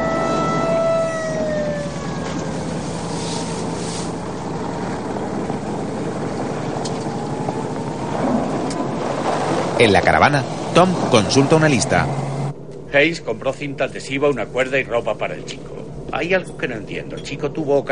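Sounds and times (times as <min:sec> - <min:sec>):
police car sirens passing on a nearby road: 0:00.0 - 0:12.6
broad rushing rumble: 0:00.0 - 0:17.9
speech: 0:09.8 - 0:12.3, 0:12.9 - 0:17.9.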